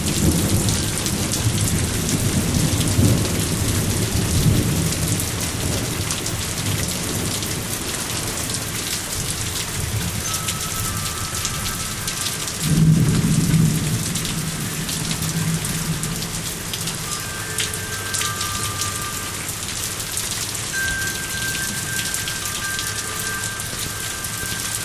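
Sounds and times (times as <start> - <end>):
low thunder rumbling: 0.0 - 8.4, 9.2 - 17.7
dense rain pattering on a hard surface at a back door: 0.0 - 24.8.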